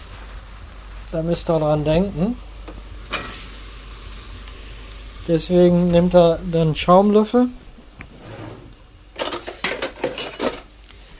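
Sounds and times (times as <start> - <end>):
button mushrooms frying in very hot smoking oil in a pan: 0.0 - 7.4
speech: 1.1 - 2.5, 5.3 - 7.6.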